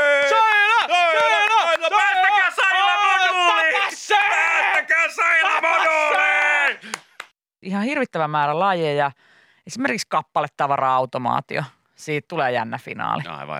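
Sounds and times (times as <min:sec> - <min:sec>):
crowd cheering and yelling at a competition final: 0:00.0 - 0:06.9
speech: 0:07.6 - 0:13.5.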